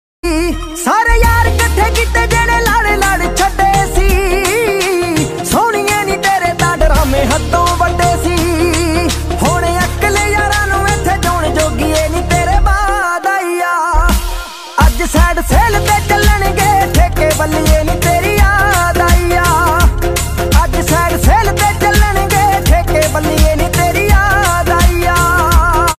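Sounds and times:
Punjabi song: 0.2s - 25.9s.

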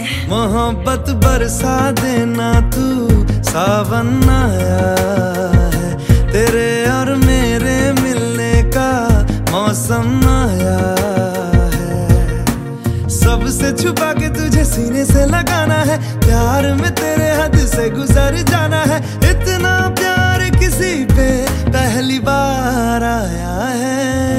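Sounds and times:
new romantic Hindi song ringtone: 0.0s - 24.3s.

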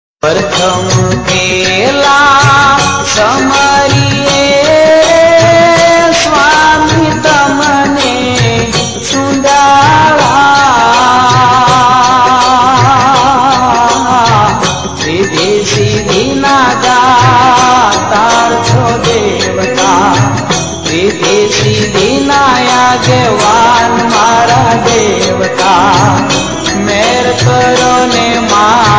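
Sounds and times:
Gujarati bhajan ringtone: 0.2s - 28.9s.

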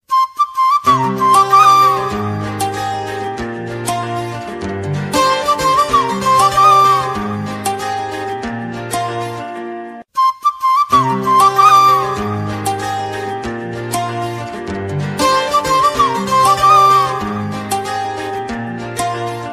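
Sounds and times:
romantic instrumental flute ringtone: 0.1s - 19.5s.

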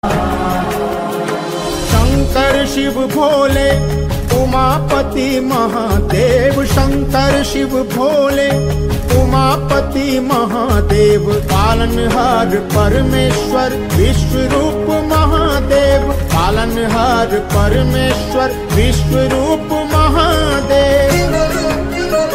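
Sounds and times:
devotional ringtone music: 0.0s - 22.3s.

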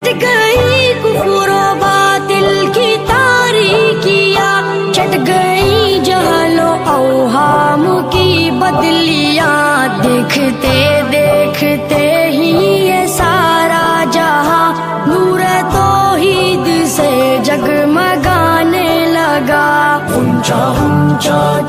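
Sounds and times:
devotional chant ringtone: 0.1s - 21.6s.

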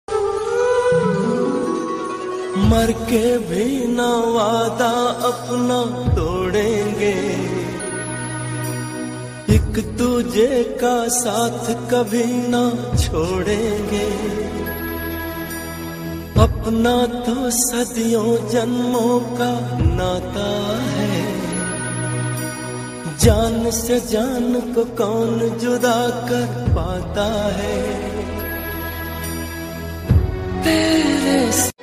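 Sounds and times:
old Hindi sad song ringtone: 0.5s - 12.8s, 13.4s - 31.7s.

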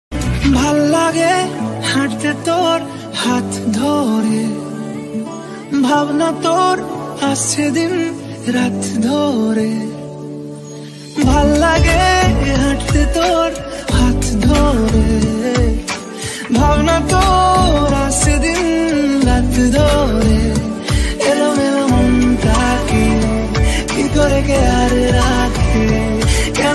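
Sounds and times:
Bangla romantic ringtone: 0.3s - 26.7s.

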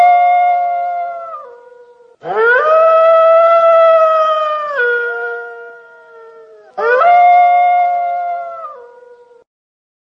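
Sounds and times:
wolf howling: 0.0s - 9.4s.

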